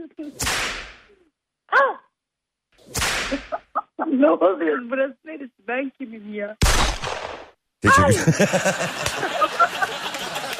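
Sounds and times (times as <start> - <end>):
whip cracks: 0.4 - 1.1, 2.9 - 3.5
speech: 4.2 - 6.9, 7.8 - 10.4
short voiced cry: 7.8 - 8.3
laughter: 7.8 - 10.5.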